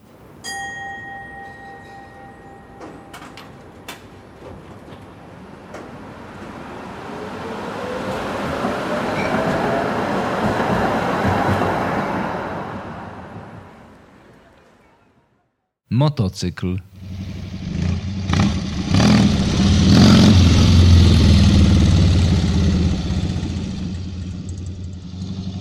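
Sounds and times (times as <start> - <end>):
tram bell ringing: 0.1 - 6.0, 8.2 - 13.3
tram wheels rumbling on rails: 0.1 - 14.8, 17.0 - 25.5
speech: 16.0 - 16.9.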